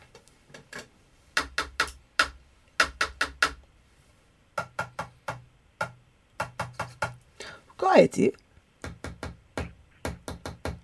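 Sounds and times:
pen tapping a rhythm on a hard surface: 0:01.4 - 0:03.6, 0:04.6 - 0:07.2, 0:08.8 - 0:10.8
speech: 0:07.9 - 0:08.4.

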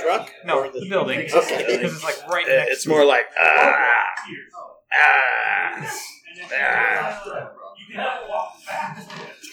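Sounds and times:
speech: 0:00.1 - 0:08.1
voice imitating snoring with rasping moan-like tones: 0:04.9 - 0:07.1.

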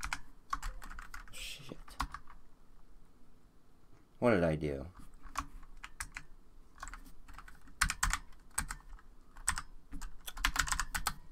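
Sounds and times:
typing on a computer keyboard: 0:00.0 - 0:02.4, 0:05.2 - 0:11.2
speech: 0:04.2 - 0:05.0.

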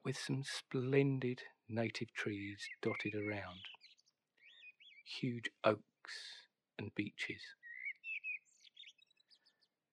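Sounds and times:
speech: 0:00.0 - 0:03.8, 0:05.1 - 0:07.6
birds chirping in trees: 0:01.9 - 0:05.4, 0:07.2 - 0:09.8.

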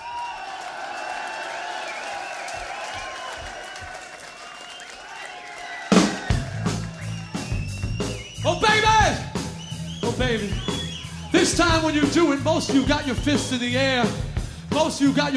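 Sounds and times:
large concert crowd clapping: 0:00.0 - 0:11.9
large concert crowd cheering: 0:00.0 - 0:15.3
crowd whistles: 0:01.0 - 0:11.9
speech: 0:10.2 - 0:10.8, 0:11.4 - 0:15.3.

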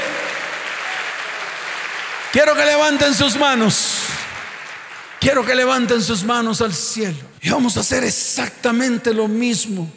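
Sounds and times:
audience applauding loudly: 0:00.0 - 0:06.2
speech: 0:02.3 - 0:04.3, 0:05.2 - 0:09.9.

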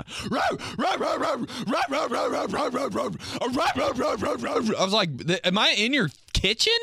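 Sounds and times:
human voice imitating a dog barking: 0:00.0 - 0:04.9
speech: 0:00.1 - 0:06.8.

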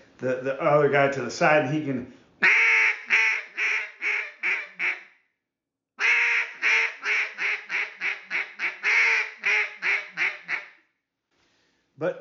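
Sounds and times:
speech: 0:00.2 - 0:02.5
light hen quacks blown on a duck call: 0:02.4 - 0:05.0, 0:06.0 - 0:10.7.

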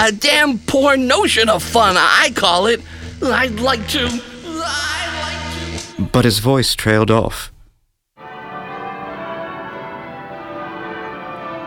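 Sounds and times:
speech: 0:00.0 - 0:04.8, 0:06.0 - 0:07.5
church bells ringing at midnight: 0:08.2 - 0:11.6.

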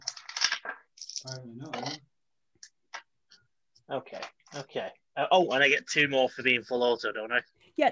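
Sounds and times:
dice clattering onto a table: 0:00.0 - 0:02.0
speech: 0:01.2 - 0:02.1, 0:03.9 - 0:07.9.

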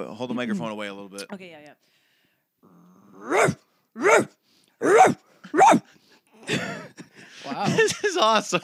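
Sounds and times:
speech: 0:00.0 - 0:02.0, 0:02.6 - 0:05.9, 0:06.5 - 0:08.6
person imitating dog barks with their voice: 0:03.2 - 0:05.9
laughter: 0:06.4 - 0:08.6.

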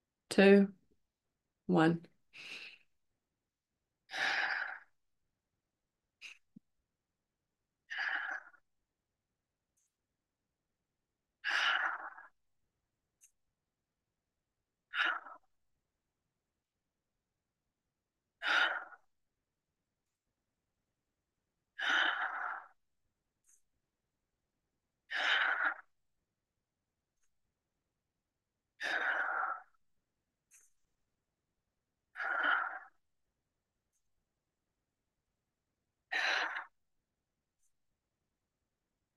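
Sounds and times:
speech: 0:00.4 - 0:00.8, 0:01.7 - 0:02.6
slow guided breathing in and out: 0:02.3 - 0:03.1, 0:04.0 - 0:05.1, 0:06.2 - 0:06.7, 0:07.8 - 0:08.7, 0:11.4 - 0:12.5, 0:14.8 - 0:15.8, 0:18.3 - 0:19.3, 0:21.6 - 0:23.8, 0:25.0 - 0:26.2, 0:28.7 - 0:31.0, 0:32.0 - 0:33.2, 0:36.0 - 0:36.9.

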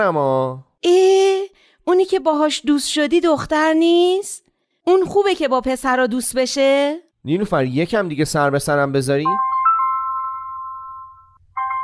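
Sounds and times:
speech: 0:00.0 - 0:09.5
phone ringing with an electronic tone: 0:09.3 - 0:11.8.

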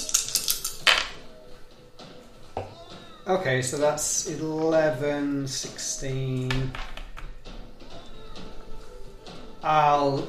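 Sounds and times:
dice rolled for damage in a tabletop role-playing game: 0:00.0 - 0:01.2
speech: 0:03.3 - 0:06.9, 0:09.6 - 0:10.2.

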